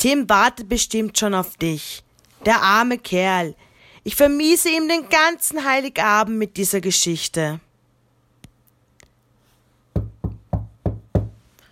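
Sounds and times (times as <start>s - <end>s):
speech: 0.0s - 7.7s
child knocking on a hospital room door: 9.9s - 11.4s.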